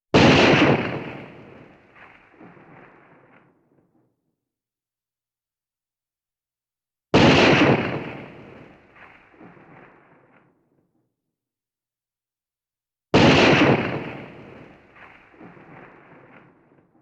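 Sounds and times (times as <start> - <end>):
single-shot firearm shot: 0.1 - 3.5, 7.1 - 10.6, 13.1 - 17.0.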